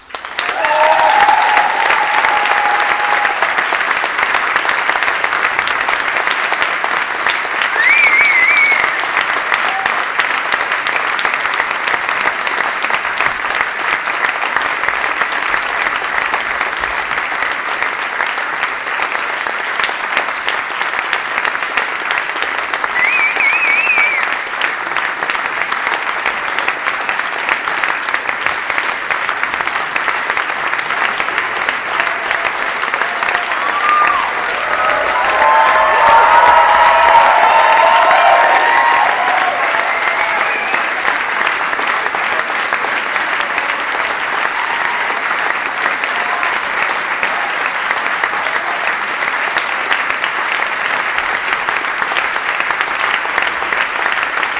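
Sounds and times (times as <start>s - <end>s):
audience applause: 0.0s - 54.5s.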